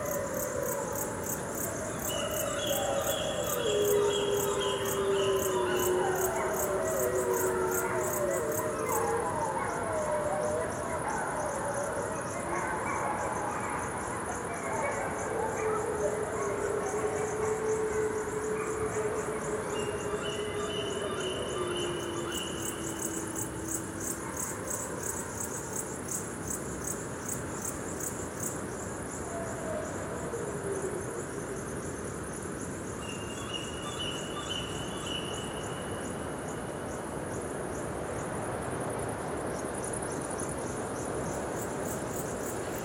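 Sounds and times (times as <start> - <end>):
gray wolves howling: 0.0 - 13.7, 14.4 - 25.5
insects chirping: 0.0 - 42.8.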